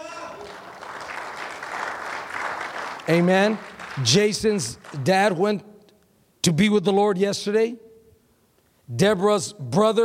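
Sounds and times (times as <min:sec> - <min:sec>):
large group clapping together: 0:00.0 - 0:05.4
speech: 0:03.1 - 0:05.7, 0:06.5 - 0:07.8, 0:08.9 - 0:10.0.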